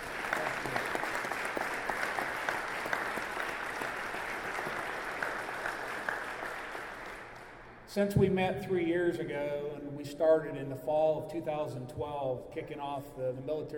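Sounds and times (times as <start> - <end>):
audience applause: 0.0 - 7.7
speech: 7.9 - 13.7.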